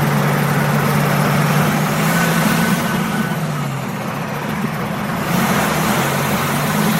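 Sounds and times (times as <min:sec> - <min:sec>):
heavy Caterpillar C15 diesel engine in a Kenworth T908 truck rumbling: 0:00.0 - 0:06.9.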